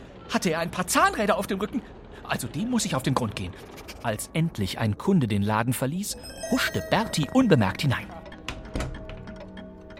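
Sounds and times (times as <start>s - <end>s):
speech: 0.3s - 8.2s
many clocks ticking together in a clock shop: 6.3s - 9.9s.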